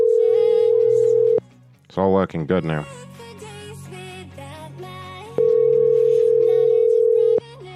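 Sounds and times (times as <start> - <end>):
telephone dial tone on an auto-dialer: 0.0 - 1.4, 5.4 - 7.4
speech: 2.0 - 3.0.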